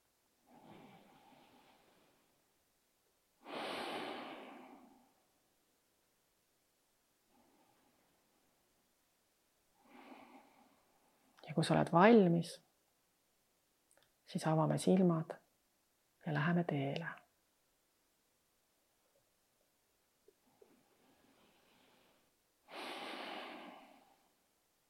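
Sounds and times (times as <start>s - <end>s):
slow deep breathing in and out: 0.5s - 2.4s, 3.4s - 5.2s, 9.8s - 11.3s, 20.6s - 24.4s
speech: 11.6s - 12.6s, 14.3s - 15.4s, 16.2s - 17.2s.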